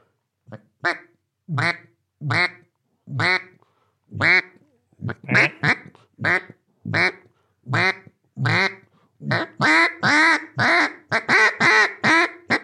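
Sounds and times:
speech: 0.5s - 2.6s
duck call blown in flat quacks: 0.8s - 12.6s.

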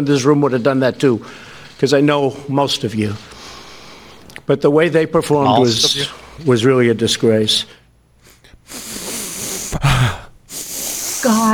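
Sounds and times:
speech: 0.0s - 3.4s, 4.5s - 7.8s, 11.3s - 11.5s
big deep winded inhales: 3.2s - 4.3s, 8.2s - 11.5s.

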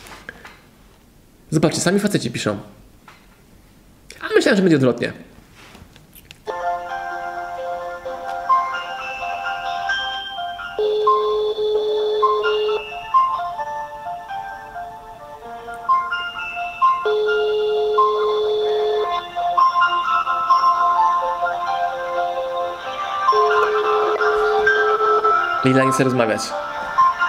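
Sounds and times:
speech: 1.5s - 2.8s, 4.5s - 5.3s, 25.7s - 26.7s
outgoing phone call electronic ringing melody: 6.5s - 14.9s, 15.5s - 27.2s.

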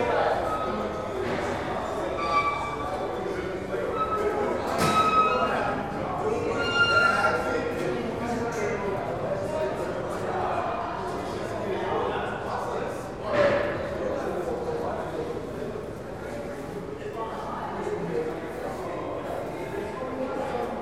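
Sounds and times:
crowd murmur on a cavernous subway platform: 0.0s - 20.8s
three story escalators creaking and groaning: 0.3s - 7.7s.

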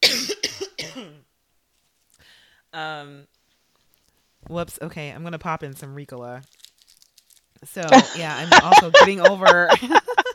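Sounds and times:
person coughing harshly: 0.0s - 1.2s
speech: 2.7s - 3.4s, 4.4s - 6.6s, 7.6s - 10.1s
laughter: 7.9s - 10.3s.

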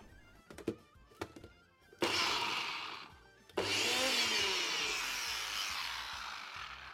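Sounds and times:
blender motor grinding onion and parsley: 2.0s - 6.9s.

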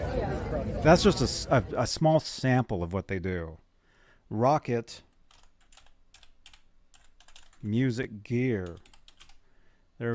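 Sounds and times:
speech: 0.6s - 3.6s, 4.3s - 5.1s, 7.6s - 8.9s
typing on a computer keyboard: 5.2s - 7.7s, 8.6s - 9.4s.

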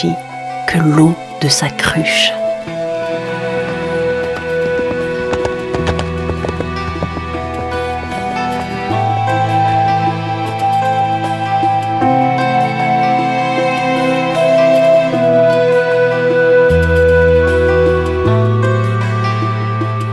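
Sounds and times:
speech: 0.0s - 2.4s
sustained music with deep bass notes: 0.0s - 20.1s
horse hooves clip-clopping as a traveller rides off: 2.4s - 9.2s.

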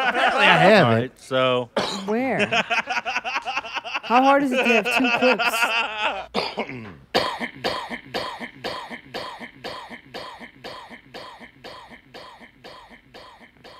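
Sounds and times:
laughter: 0.0s - 0.8s, 2.2s - 6.9s
speech: 0.4s - 3.1s, 4.1s - 5.9s
repeated sharp coughing: 1.8s - 2.2s, 6.2s - 13.7s.

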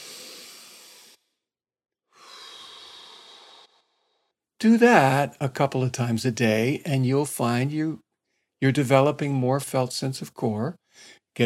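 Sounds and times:
person breathing in through nose and out through pursed lips: 0.0s - 1.2s, 2.1s - 4.3s, 10.9s - 11.3s
speech: 4.6s - 8.0s, 8.6s - 11.4s.

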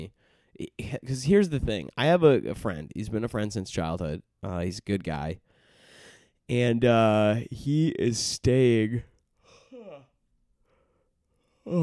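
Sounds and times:
speech: 0.0s - 5.5s, 6.5s - 9.1s, 11.7s - 11.8s
person yawning: 9.5s - 10.2s, 11.6s - 11.8s.

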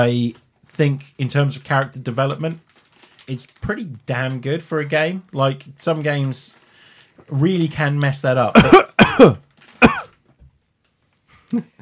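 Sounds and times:
speech: 0.0s - 6.6s, 7.2s - 9.9s, 11.5s - 11.7s
person coughing: 8.6s - 10.2s.

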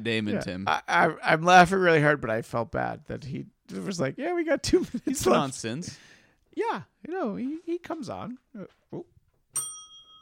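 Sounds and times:
speech: 0.0s - 9.1s
single bell struck: 9.5s - 10.1s.

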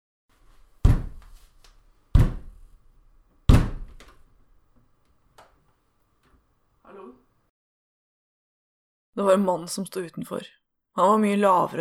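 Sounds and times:
heavy solid thuds of a door being opened: 0.8s - 1.3s, 2.1s - 2.6s, 3.4s - 4.2s
speech: 9.2s - 11.8s.

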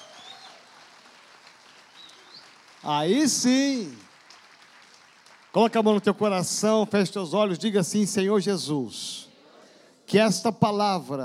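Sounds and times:
audience applauding: 0.0s - 6.6s
speech: 2.8s - 4.0s, 5.5s - 9.3s, 10.1s - 11.2s.

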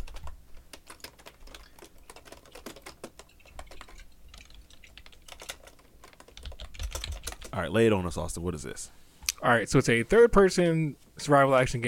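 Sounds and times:
typing on a computer keyboard: 0.0s - 7.6s
speech: 7.6s - 11.8s.

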